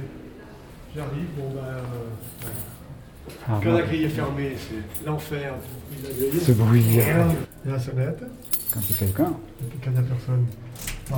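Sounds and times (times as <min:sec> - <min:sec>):
speech: 0:01.0 - 0:11.1
keys jangling: 0:02.2 - 0:03.3, 0:04.9 - 0:07.7, 0:08.3 - 0:11.1.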